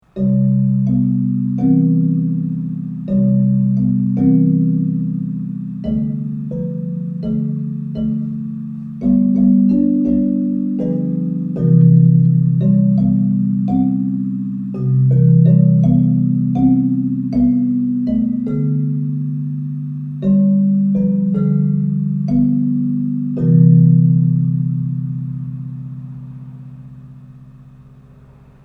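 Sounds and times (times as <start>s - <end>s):
metallophone: 0.0s - 28.6s.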